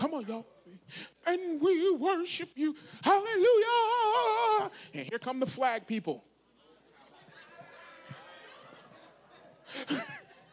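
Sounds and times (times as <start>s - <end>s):
speech: 0.2s - 6.3s, 9.7s - 10.2s
heavy breathing during a worship service: 0.8s - 1.2s
laughter: 6.9s - 10.5s.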